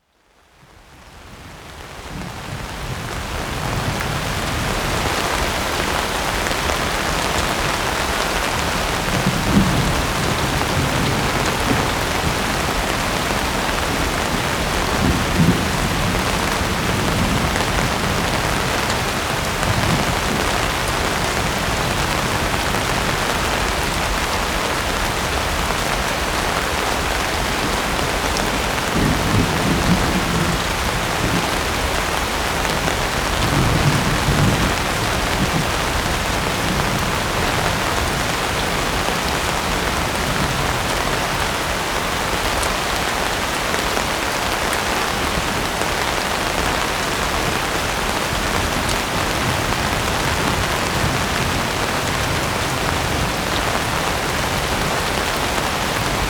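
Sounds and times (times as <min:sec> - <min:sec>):
constant rain storm: 0:00.0 - 0:56.2.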